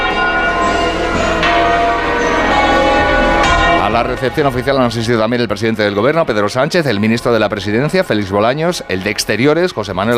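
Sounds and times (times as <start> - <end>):
church bells ringing across the city: 0.0 - 10.1
speech: 4.0 - 10.1.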